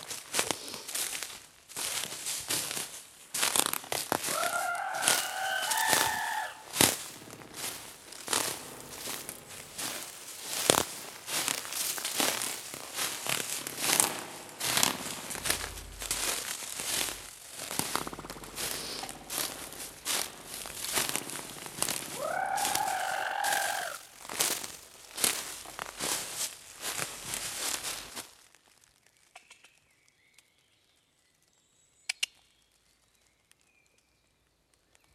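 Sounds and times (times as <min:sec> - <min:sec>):
someone pushing through leafy branches, rustling and crunching foliage: 0:00.0 - 0:29.2
bird-like call: 0:13.8 - 0:24.0.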